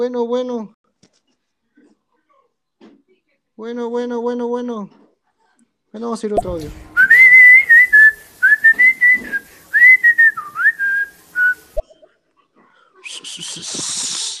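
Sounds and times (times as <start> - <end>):
speech: 0.0 - 0.8, 3.6 - 5.0, 5.9 - 6.9
burst of broadband hiss or rustling: 6.4 - 11.8, 13.1 - 14.3
person whistling a short wavering melody: 6.4 - 11.8.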